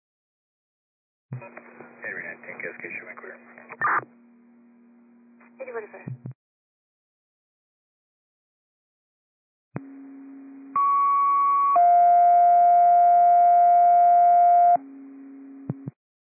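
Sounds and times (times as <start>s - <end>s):
speech: 2.6s - 4.2s, 5.6s - 6.3s
radio paging test tones: 10.8s - 14.8s.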